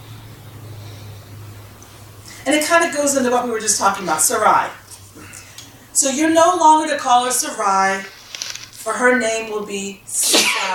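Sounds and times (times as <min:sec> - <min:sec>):
speech: 0:02.5 - 0:05.3, 0:06.0 - 0:08.2, 0:08.8 - 0:10.7
sharp breathy sneeze: 0:10.2 - 0:10.7.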